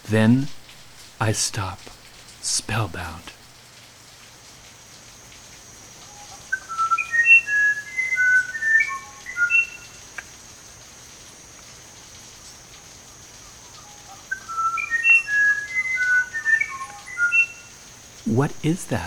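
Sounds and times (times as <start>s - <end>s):
speech: 0.1s - 0.6s, 1.2s - 3.4s, 18.3s - 19.0s
faint steady insect hum: 0.1s - 3.7s, 4.4s - 19.0s
musician wren singing flute-like whistled notes: 6.0s - 10.3s, 13.1s - 17.8s.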